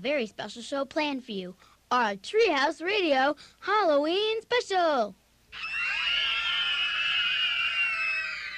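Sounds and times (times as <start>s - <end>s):
speech: 0.0s - 5.8s
primary school class of children screaming together: 5.5s - 8.5s.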